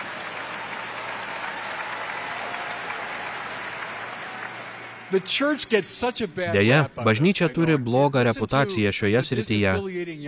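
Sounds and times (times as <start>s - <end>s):
audience applauding: 0.0s - 5.8s
speech: 5.1s - 10.2s.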